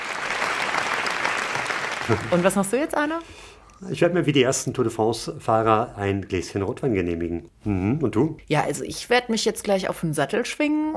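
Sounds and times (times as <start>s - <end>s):
crowd applause: 0.0s - 2.9s
speech: 2.1s - 10.9s.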